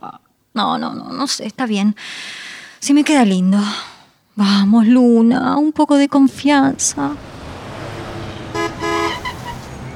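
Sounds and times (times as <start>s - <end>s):
speech: 0.6s - 7.3s
busy road traffic rumbling: 6.2s - 9.9s
car horn honking: 8.3s - 9.8s.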